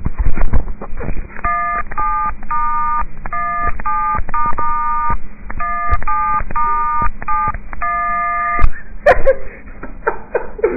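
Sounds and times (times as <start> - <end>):
mobile phone keypad dual-tone beeps playing a song cover: 1.4 - 8.7
laughter: 8.7 - 10.7.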